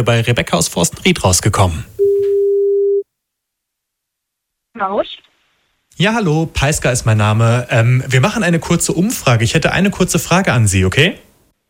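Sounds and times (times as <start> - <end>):
speech: 0.0 - 1.9, 4.8 - 5.3, 6.0 - 11.3
telephone ringback tone of an outgoing phone call: 2.0 - 3.0.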